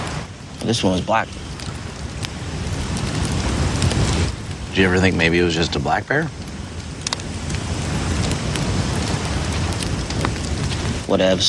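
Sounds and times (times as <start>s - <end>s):
crackling campfire: 0.0s - 11.4s
speech: 0.6s - 1.5s, 4.8s - 6.4s, 11.1s - 11.4s.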